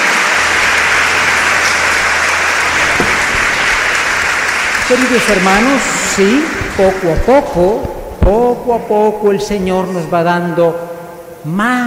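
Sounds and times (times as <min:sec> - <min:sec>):
crowd applauding: 0:00.0 - 0:07.9
speech: 0:04.9 - 0:11.8.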